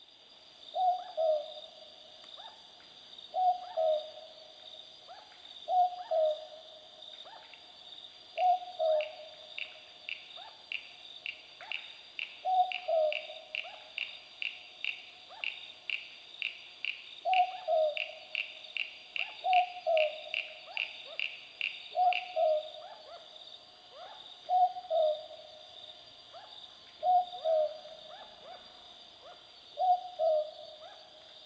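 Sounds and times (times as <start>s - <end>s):
Southern Boobook Ninox boobook calling: 0.8s - 1.6s, 3.3s - 4.4s, 5.1s - 6.6s, 8.4s - 9.4s, 12.4s - 14.1s, 17.2s - 23.3s, 23.9s - 25.4s, 26.3s - 31.0s.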